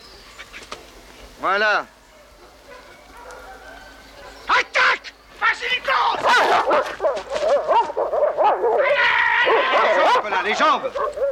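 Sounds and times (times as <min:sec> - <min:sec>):
speech: 0:01.4 - 0:02.0, 0:05.6 - 0:11.3
dog barking and yipping during attack training: 0:02.2 - 0:04.9, 0:06.0 - 0:11.3.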